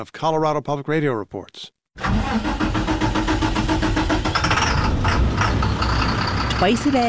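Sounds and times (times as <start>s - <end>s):
speech: 0.0s - 2.8s, 6.6s - 7.0s
diesel-fuelled US school bus engine running: 2.0s - 7.0s.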